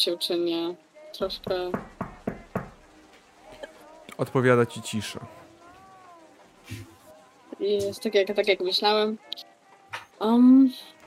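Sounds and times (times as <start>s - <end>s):
speech: 0.0s - 2.0s, 4.2s - 5.4s, 6.7s - 6.9s, 7.6s - 9.5s, 10.2s - 10.9s
knocking on a door: 1.4s - 2.8s.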